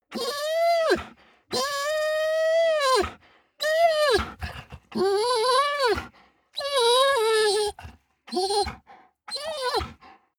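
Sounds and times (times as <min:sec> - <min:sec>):
dog whining long: 0:00.1 - 0:10.0.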